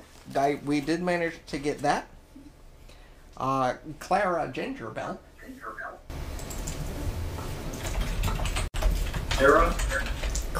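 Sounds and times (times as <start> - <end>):
speech: 0.4 - 2.1, 3.4 - 5.8, 9.4 - 10.5
typing on a computer keyboard: 6.4 - 6.8, 7.8 - 10.5.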